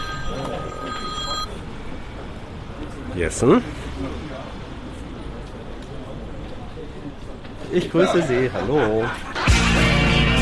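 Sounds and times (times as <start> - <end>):
telephone ringing as a call comes in: 0.0 - 1.5
speech: 3.2 - 4.3, 7.7 - 9.8
laughter: 7.8 - 10.3.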